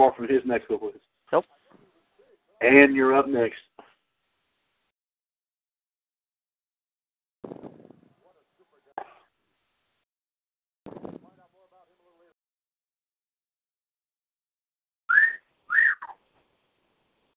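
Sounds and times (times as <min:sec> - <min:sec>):
speech: 0:00.0 - 0:01.6, 0:02.6 - 0:03.7
person whistling sliding notes: 0:15.1 - 0:16.0.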